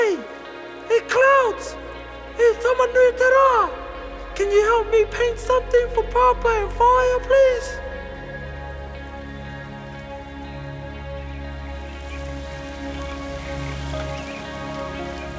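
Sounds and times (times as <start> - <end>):
light drizzling rain pattering: 0.0 - 15.3
sustained humming musical bed: 1.7 - 15.3
speech: 4.4 - 7.8.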